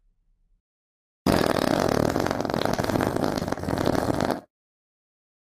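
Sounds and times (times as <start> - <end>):
long loud rumbling fart: 1.3 - 4.5.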